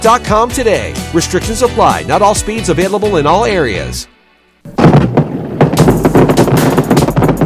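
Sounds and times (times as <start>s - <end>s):
speech: 0.0s - 4.8s
fireworks exploding: 4.7s - 7.4s.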